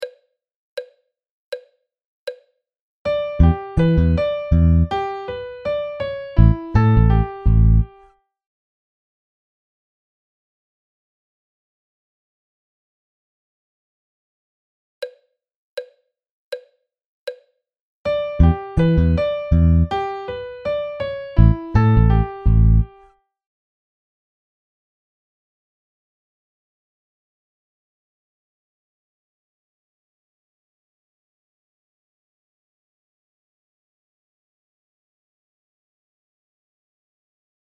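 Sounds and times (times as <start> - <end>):
melodic dictation melody: 3.2 - 8.0, 18.2 - 23.0.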